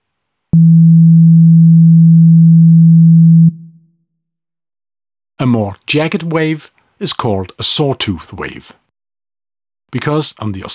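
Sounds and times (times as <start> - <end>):
pure low sine wave tone: 0.6 - 3.8
speech: 5.4 - 8.8, 9.9 - 10.7.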